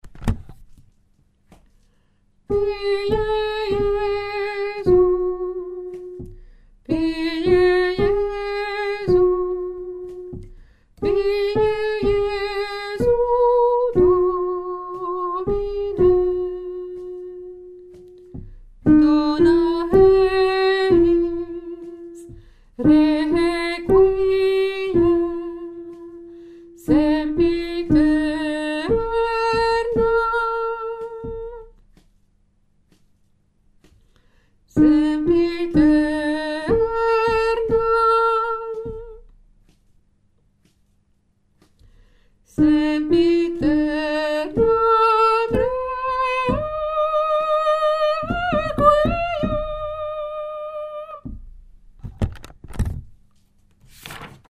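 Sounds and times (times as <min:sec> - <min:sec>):
soprano of a chorale singing the letter A: 0:02.5 - 0:06.3, 0:06.9 - 0:10.4, 0:11.0 - 0:18.1, 0:18.9 - 0:31.7, 0:34.7 - 0:39.2, 0:42.5 - 0:51.3.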